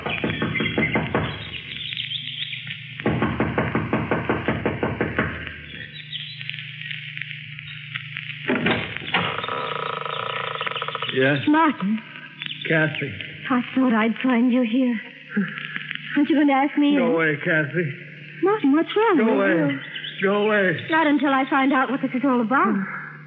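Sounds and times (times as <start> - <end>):
impatient knocking on a wooden front door: 0.0 - 1.6, 3.0 - 5.5
steady low hum: 0.0 - 23.2
speech: 11.2 - 23.0.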